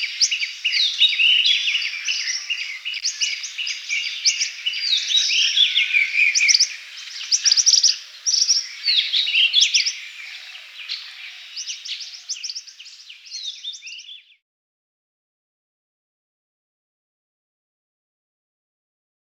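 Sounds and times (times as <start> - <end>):
rosy minivet calls, high chirping and brief whistles: 0.0 - 14.4.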